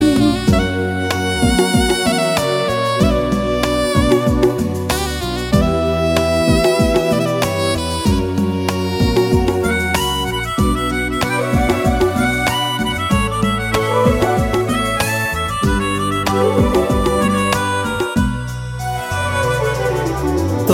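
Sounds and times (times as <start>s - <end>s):
instrumental ringtone music: 0.0s - 20.7s.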